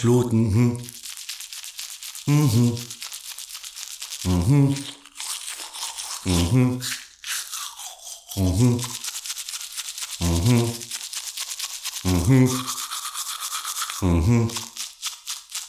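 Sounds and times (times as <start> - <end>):
speech: 0.0 - 0.9, 2.3 - 3.0, 4.2 - 5.0, 6.2 - 7.0, 8.4 - 9.0, 10.2 - 10.8, 12.2 - 12.8, 14.0 - 14.7
person singing a German tooth-brushing song: 0.0 - 1.0, 2.3 - 2.9, 4.3 - 5.0, 6.2 - 7.0, 8.4 - 9.0, 10.2 - 10.9, 12.1 - 12.8, 14.0 - 14.7
toothbrush scrubbing teeth: 0.0 - 15.6.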